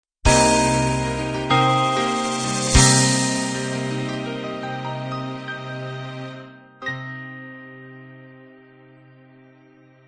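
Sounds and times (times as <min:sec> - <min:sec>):
love ballad ending: 0:00.3 - 0:08.1.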